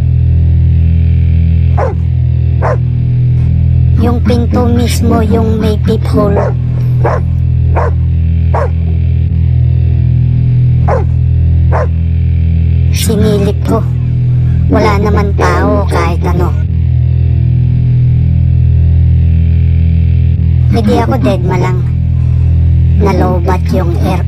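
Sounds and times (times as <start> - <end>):
steady low hum: 0.0 - 24.2
dog barking: 1.8 - 2.9, 6.3 - 8.8, 10.9 - 12.0
speech: 4.1 - 8.0, 13.0 - 14.0, 14.8 - 16.6, 20.8 - 21.9, 23.0 - 24.2.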